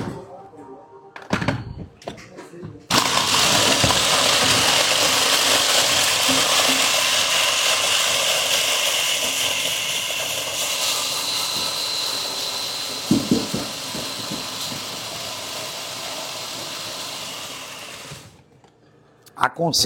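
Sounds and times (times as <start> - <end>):
food processor crushing biscuits: 2.9 - 18.4
knocks: 13.1 - 15.0.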